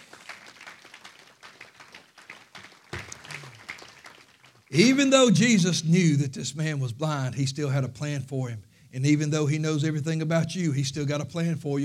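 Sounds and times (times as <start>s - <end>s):
audience at a church service clapping: 0.0s - 5.0s
speech: 4.7s - 11.8s.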